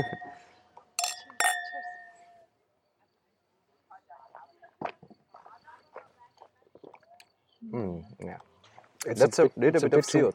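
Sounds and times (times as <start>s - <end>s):
speech: 0.0s - 0.2s, 7.7s - 10.3s
wine glasses of Secco clinking in a toast at a winery: 0.0s - 0.4s, 1.0s - 2.3s.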